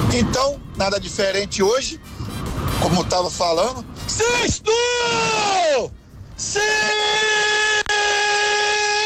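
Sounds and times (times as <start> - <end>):
speech: 0.2 - 2.1, 2.8 - 7.5
loud piercing scream: 4.2 - 9.0.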